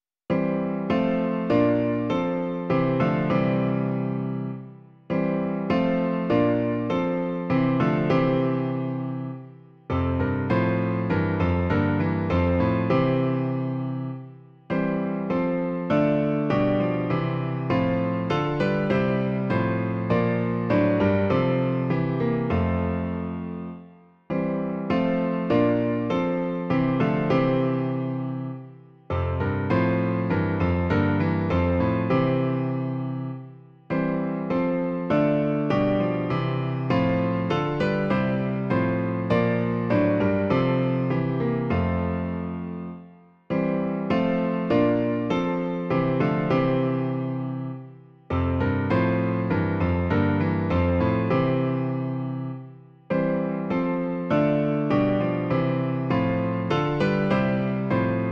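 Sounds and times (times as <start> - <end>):
piano version of a piece: 0.3 - 58.3.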